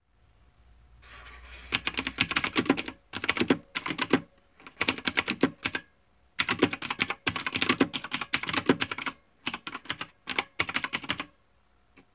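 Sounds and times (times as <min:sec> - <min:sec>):
keyboard typing: 0:01.7 - 0:11.3.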